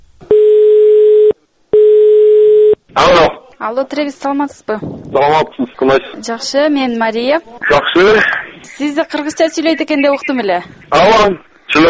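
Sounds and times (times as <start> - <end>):
telephone line tone while placing a call: 0.3 - 2.8
speech: 3.0 - 11.8.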